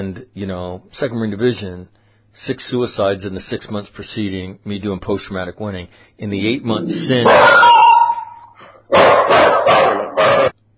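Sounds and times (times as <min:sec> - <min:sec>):
speech: 0:00.0 - 0:07.8
big dog barking deep rough barks: 0:07.2 - 0:10.6.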